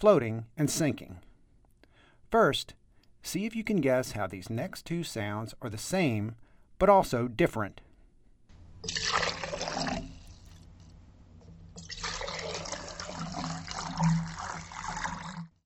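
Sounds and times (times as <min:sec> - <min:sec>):
speech: 0:00.0 - 0:01.2, 0:02.3 - 0:07.8, 0:08.8 - 0:09.2
water pouring into a container: 0:08.8 - 0:10.8, 0:11.5 - 0:15.6.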